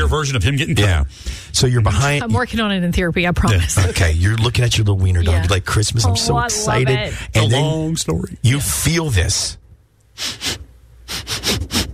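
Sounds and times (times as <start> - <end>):
speech: 0.1 - 9.6, 10.2 - 10.6
person sniffing: 10.2 - 11.9.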